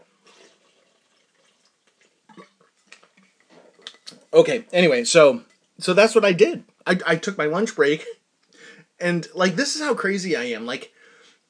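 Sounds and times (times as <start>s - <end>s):
person sipping and drinking water: 0.0s - 4.3s
speech: 4.4s - 8.2s, 9.0s - 11.0s.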